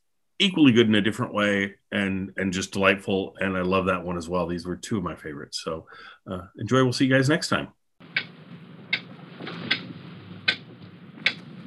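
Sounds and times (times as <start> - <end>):
speech: 0.4 - 8.3
time bomb ticking: 8.0 - 11.5.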